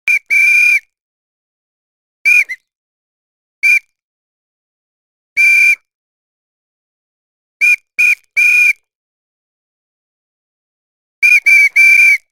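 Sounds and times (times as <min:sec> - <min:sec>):
whistle: 0:00.1 - 0:01.0, 0:02.2 - 0:02.7, 0:03.6 - 0:04.0, 0:05.4 - 0:05.9, 0:07.6 - 0:08.9, 0:11.2 - 0:12.2.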